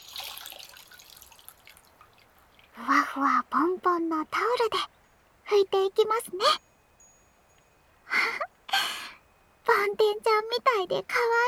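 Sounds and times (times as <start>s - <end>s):
water trickling and dripping as feet are lifted out of a basin of hot water: 0.0s - 3.0s
speech: 2.8s - 4.9s, 5.5s - 6.7s, 9.8s - 11.4s.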